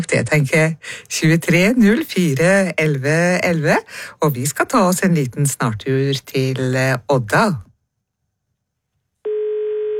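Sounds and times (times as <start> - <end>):
speech: 0.0 - 7.7
telephone line tone from a caller in Odda: 9.2 - 9.9.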